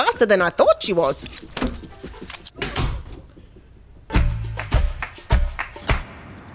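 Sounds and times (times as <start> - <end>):
speech: 0.0 - 1.8
door opened and shut as a woman runs out: 1.1 - 3.7.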